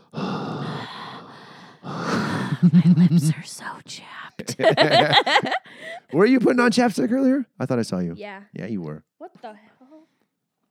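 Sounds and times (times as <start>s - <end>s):
heavy raspy mouth breathing: 0.0s - 2.6s
laughter: 2.6s - 3.3s, 4.4s - 5.8s
speech: 2.6s - 9.7s.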